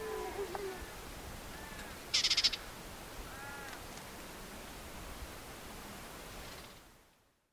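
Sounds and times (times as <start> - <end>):
steady background hiss: 0.0 - 7.5
white-throated warbler rattling call: 1.5 - 2.7.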